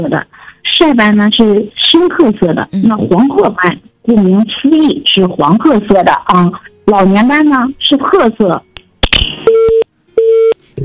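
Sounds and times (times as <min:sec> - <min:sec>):
speech: 0:00.0 - 0:09.8
telephone busy tone after a dropped phone line: 0:09.5 - 0:10.8.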